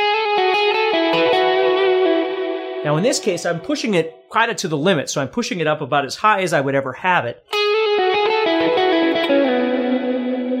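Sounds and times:
sustained electric guitar line with long reverb: 0.0 - 4.6, 7.5 - 10.5
speech: 2.8 - 7.6.

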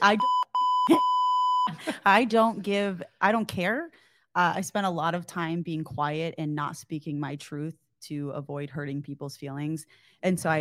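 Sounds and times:
speech: 0.0 - 1.1, 1.8 - 10.5
loud steady censor bleep tone: 0.0 - 1.8.

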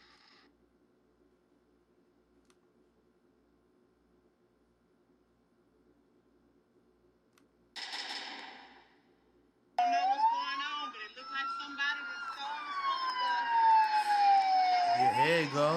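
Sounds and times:
several police sirens wailing during a chase: 9.8 - 15.7.

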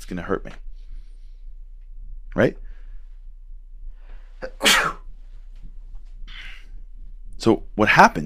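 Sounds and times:
low steady hum: 0.0 - 8.2
speech: 0.1 - 0.7, 2.3 - 2.6, 7.4 - 8.2
sneeze: 4.4 - 5.1.

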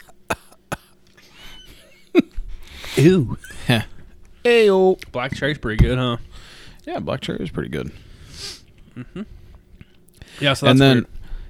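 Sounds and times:
sharp coughs: 0.0 - 1.0
faint hum: 0.0 - 11.4
speech: 3.0 - 9.4, 10.4 - 11.2.

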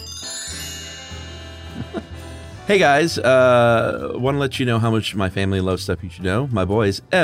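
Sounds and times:
bright bell-like electronic chime: 0.0 - 2.7
speech: 2.7 - 7.2.

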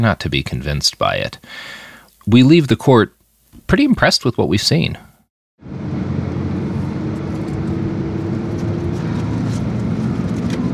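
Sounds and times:
speech: 0.0 - 5.8
car driving on a road: 5.6 - 10.7.

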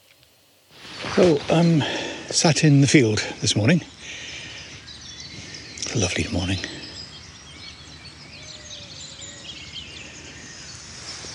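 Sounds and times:
soft hiss: 0.0 - 11.3
several small birds calling and chirping in open countryside: 0.8 - 11.3
speech: 1.2 - 4.3, 5.9 - 6.8.

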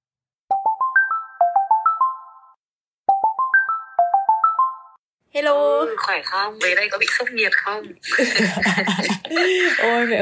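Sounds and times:
phone ringtone with bright stepped electronic melody: 0.5 - 5.0
speech: 5.4 - 10.2
laughter: 8.0 - 10.2.

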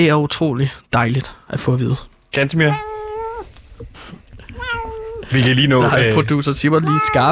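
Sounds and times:
speech: 0.0 - 2.9, 5.3 - 7.3
cat meowing: 2.7 - 3.5, 4.4 - 5.3, 6.7 - 7.3
faint rustling: 2.8 - 5.8.

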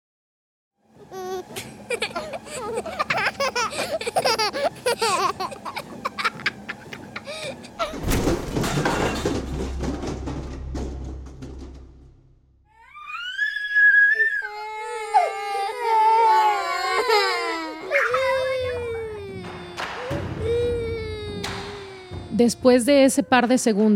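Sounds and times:
laughter: 1.5 - 7.7
low rumbling: 7.7 - 12.8
young boy held in someone's arms wailing and screaming: 12.8 - 22.6
speech: 22.4 - 23.9.

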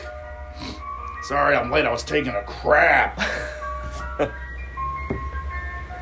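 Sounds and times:
ice cream truck low engine rumble: 0.0 - 6.0
ice cream truck tinkling jingle: 0.0 - 6.0
speech: 1.3 - 3.6, 4.2 - 4.4
clattering knocks: 5.0 - 5.4.

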